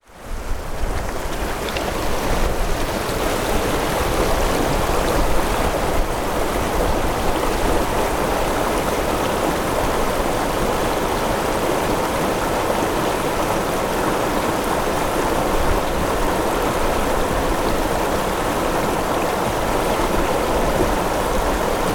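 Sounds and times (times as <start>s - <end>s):
river water flowing: 0.0s - 21.9s.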